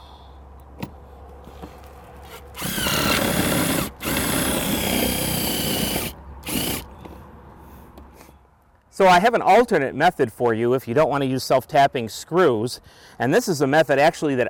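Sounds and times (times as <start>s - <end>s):
power drill drilling into an old metal satellite dish base plate: 2.3s - 6.9s
speech: 9.0s - 14.4s.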